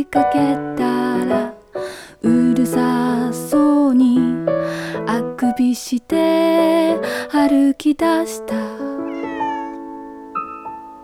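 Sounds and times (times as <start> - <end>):
speech: 0.0 - 1.4, 2.2 - 4.0, 5.1 - 8.9
cat meowing: 9.0 - 10.8.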